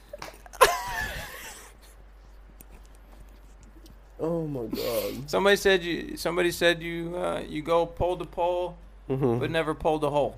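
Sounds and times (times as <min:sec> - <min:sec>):
speech: 0:04.2 - 0:10.3
person sneezing: 0:04.7 - 0:05.3.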